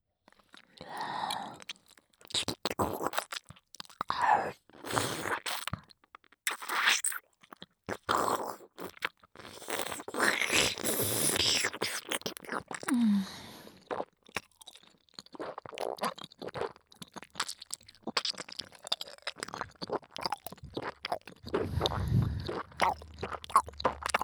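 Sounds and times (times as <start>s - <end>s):
wet chewing and crunching mouth sounds: 0.3s - 13.0s, 13.8s - 24.2s.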